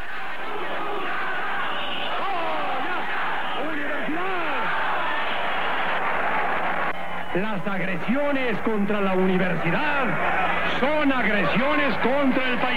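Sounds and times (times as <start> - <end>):
large crowd of students shouting: 0.0 - 7.4, 8.1 - 12.7
students whistling: 1.2 - 3.7
speech: 7.4 - 12.7.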